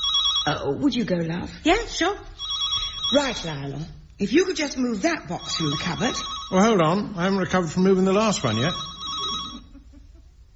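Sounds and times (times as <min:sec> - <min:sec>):
telephone bell ringing: 0:00.0 - 0:00.6, 0:02.4 - 0:03.6, 0:05.2 - 0:07.6, 0:08.2 - 0:09.8
faint low noise: 0:00.0 - 0:10.5
speech: 0:00.4 - 0:02.5, 0:03.1 - 0:09.0.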